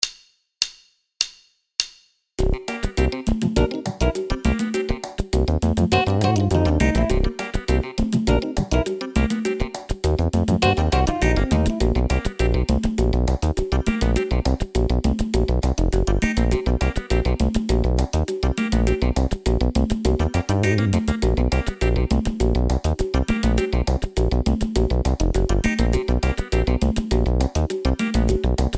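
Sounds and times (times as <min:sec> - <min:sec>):
funk backing music: 0:02.5 - 0:28.7.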